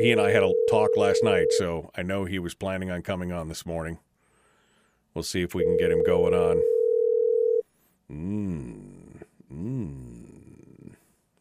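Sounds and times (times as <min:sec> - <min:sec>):
electronic ringback tone from an outgoing phone call: 0:00.0 - 0:01.6, 0:05.6 - 0:07.6
speech: 0:00.0 - 0:04.1, 0:05.2 - 0:06.8, 0:08.1 - 0:08.9, 0:09.5 - 0:10.1
loud wavering voice-like sounds: 0:08.1 - 0:11.0.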